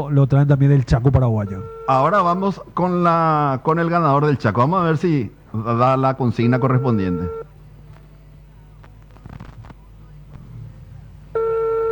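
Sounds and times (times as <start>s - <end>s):
speech: 0.0s - 7.4s
noise: 0.0s - 11.8s
telephone ring tone on a call: 1.6s - 2.5s, 5.5s - 7.5s.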